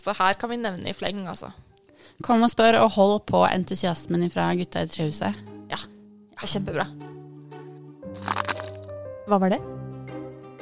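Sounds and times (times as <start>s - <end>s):
speech: 0.0s - 7.1s, 9.3s - 9.8s
sharp crackling snap sound effect: 8.2s - 8.9s.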